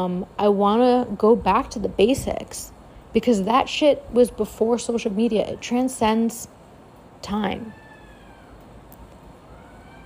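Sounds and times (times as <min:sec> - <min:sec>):
speech: 0:00.0 - 0:06.6, 0:07.2 - 0:07.8
steady noise: 0:00.0 - 0:10.0
cat screaming outdoors in a long yowl: 0:07.6 - 0:08.6, 0:09.4 - 0:10.0.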